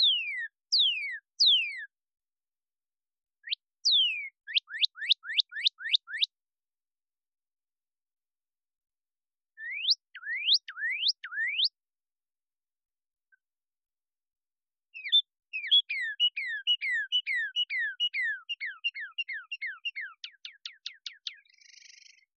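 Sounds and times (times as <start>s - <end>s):
cardinal whistling song: 0.0s - 1.9s, 3.4s - 6.3s, 9.6s - 11.8s, 15.0s - 22.2s.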